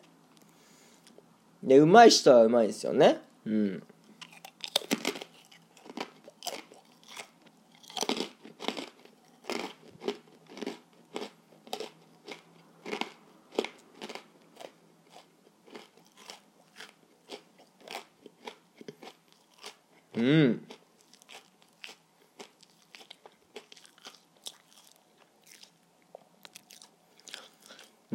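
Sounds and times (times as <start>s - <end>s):
speech: 1.6s - 3.9s
crunchy chewing of a senbei rice cracker: 4.2s - 28.0s.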